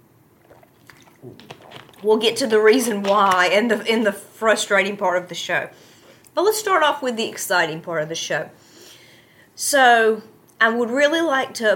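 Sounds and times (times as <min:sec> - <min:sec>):
person sipping water: 0:00.3 - 0:03.1
soft swallow of water: 0:00.4 - 0:02.1
speech: 0:01.2 - 0:08.6, 0:09.6 - 0:11.7.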